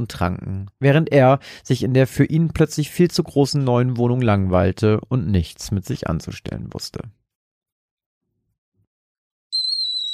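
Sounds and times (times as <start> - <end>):
speech: 0.0 - 7.2
kettle whistling on a gas stove: 9.6 - 10.1.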